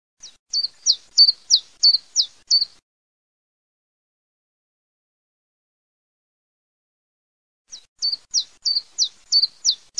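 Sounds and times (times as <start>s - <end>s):
bird singing: 0.2s - 2.8s, 7.7s - 9.9s.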